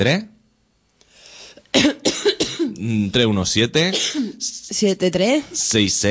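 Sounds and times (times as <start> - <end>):
speech: 0.0 - 0.3, 2.8 - 6.0
person coughing: 1.7 - 2.8, 3.9 - 4.4
throat clearing: 1.8 - 2.9.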